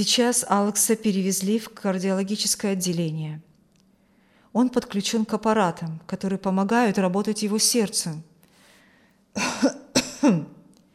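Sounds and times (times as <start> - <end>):
speech: 0.0 - 3.5, 4.5 - 8.3, 9.3 - 10.6
throat clearing: 9.4 - 10.6.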